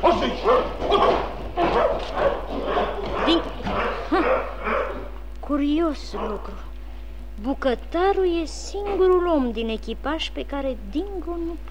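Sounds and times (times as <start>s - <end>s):
dog barking aggressively: 0.0s - 5.2s, 6.0s - 6.6s
speech: 7.4s - 11.6s.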